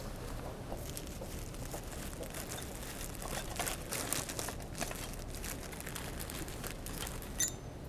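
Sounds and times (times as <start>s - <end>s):
crinkling and rustling of material: 0.0s - 7.6s
rummaging through a bag holding tools, a digging device and wet wipes: 0.0s - 7.6s
small clicks and knocks of items shifting in a bag: 0.0s - 7.6s.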